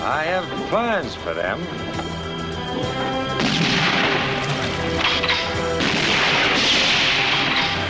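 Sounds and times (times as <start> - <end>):
continuous dramatic music: 0.0 - 7.8
speech: 0.1 - 2.2, 2.8 - 4.4
gunshots: 3.4 - 7.8.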